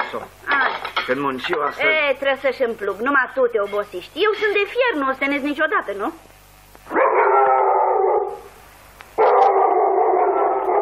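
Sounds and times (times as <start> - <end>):
speech: 0.1 - 6.3
dog howling: 6.9 - 8.5, 9.2 - 10.8.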